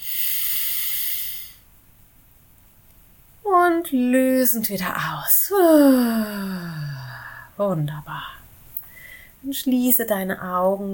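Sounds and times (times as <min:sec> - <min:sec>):
deep breath drawn in through the nose during a guided breathing exercise: 0:00.0 - 0:01.6
speech: 0:03.8 - 0:06.8, 0:07.6 - 0:08.4, 0:09.4 - 0:10.9.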